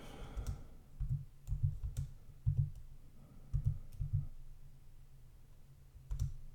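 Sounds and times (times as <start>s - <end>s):
typing on a keyboard to search online: 0.4s - 2.9s, 3.5s - 4.3s, 6.1s - 6.4s.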